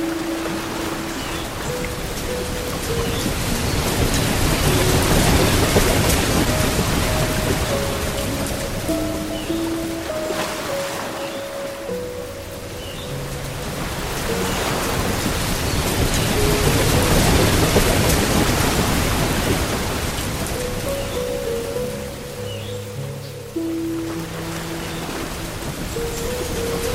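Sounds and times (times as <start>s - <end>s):
quiet sustained piano notes and chords: 0.0s - 26.9s
soft steady rain hiss: 0.0s - 26.9s.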